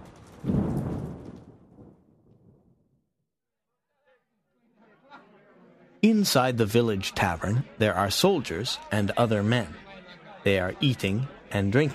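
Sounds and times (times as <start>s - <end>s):
thunder crack: 0.0s - 2.9s
speech: 6.0s - 9.8s, 10.4s - 11.9s.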